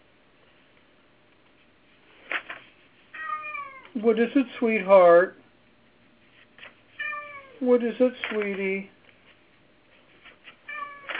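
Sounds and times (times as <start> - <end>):
cat meowing: 3.2 - 3.9, 7.0 - 7.6, 10.6 - 11.1
speech: 4.0 - 5.4, 7.6 - 9.0.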